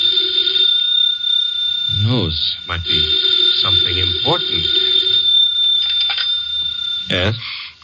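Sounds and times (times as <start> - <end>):
telephone bell ringing: 0.0 - 7.2
speech: 2.1 - 5.2, 7.1 - 7.6.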